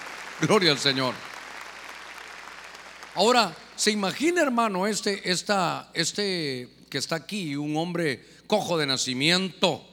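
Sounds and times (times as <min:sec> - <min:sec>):
congregation clapping loudly: 0:00.0 - 0:04.2
speech: 0:00.4 - 0:01.3, 0:03.2 - 0:09.9.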